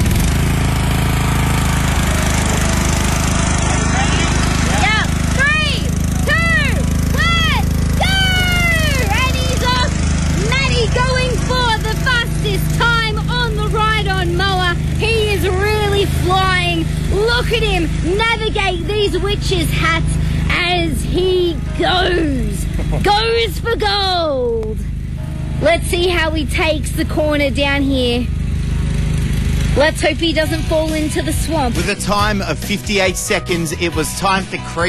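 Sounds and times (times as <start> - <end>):
ride-on lawnmower engine running during a time trial: 0.0 - 34.8
excited voices calling out: 3.6 - 14.1
speech: 22.9 - 24.9, 25.6 - 28.4, 29.8 - 34.8.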